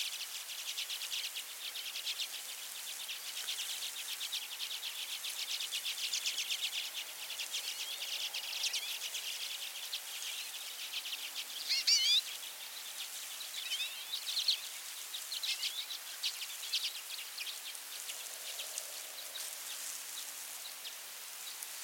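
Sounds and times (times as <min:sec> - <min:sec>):
background hiss: 0:00.0 - 0:21.8
common redpoll of nominate subspecies flammea twittering: 0:07.7 - 0:12.4, 0:13.4 - 0:14.6.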